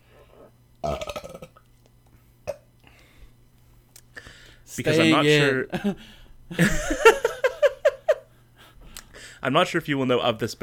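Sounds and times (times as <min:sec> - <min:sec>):
quiet room hum: 0:00.0 - 0:10.6
loud burp: 0:00.8 - 0:01.6
short belch-like gulp: 0:00.8 - 0:01.6
speech: 0:04.8 - 0:07.1, 0:09.4 - 0:10.6.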